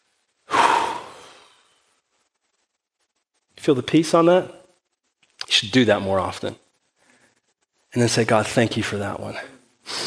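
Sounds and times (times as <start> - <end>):
person taking a deep breath: 0.5 - 1.9
speech: 3.6 - 4.6, 5.6 - 6.6, 7.9 - 10.0.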